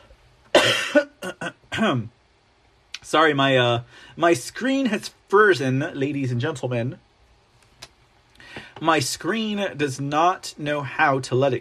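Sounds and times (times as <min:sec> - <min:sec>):
person coughing with harsh hacking coughs: 0:00.5 - 0:02.1
speech: 0:01.8 - 0:02.2, 0:03.0 - 0:07.0, 0:08.8 - 0:11.5.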